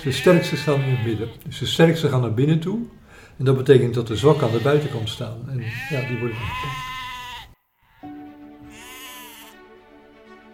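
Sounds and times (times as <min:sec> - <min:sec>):
sheep bleating in a flock: 0:00.0 - 0:01.4, 0:04.1 - 0:09.6
speech: 0:00.0 - 0:06.9.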